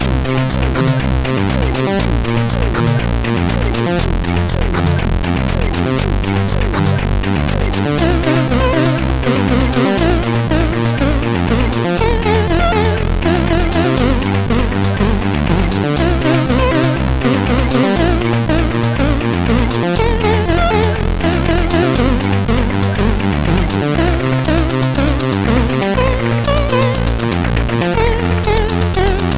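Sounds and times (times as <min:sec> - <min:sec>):
chiptune melody on SID CSG8580R5 chip: 0:00.0 - 0:29.3.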